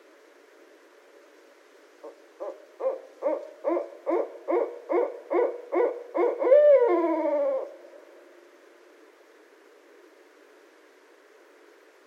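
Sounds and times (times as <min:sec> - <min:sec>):
barred owl rhythmic hooting call: 0:02.0 - 0:08.1.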